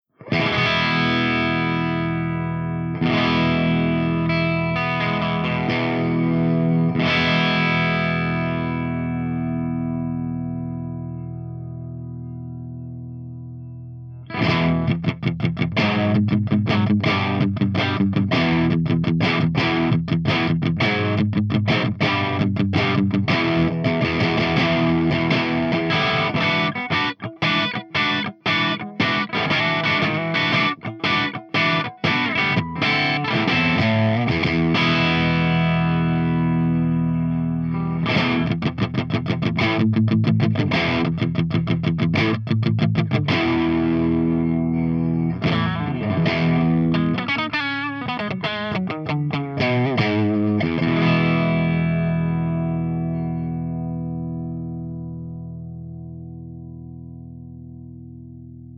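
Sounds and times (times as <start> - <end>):
crunch electric guitar through a V30 speaker cabinet: 0.0 - 58.7.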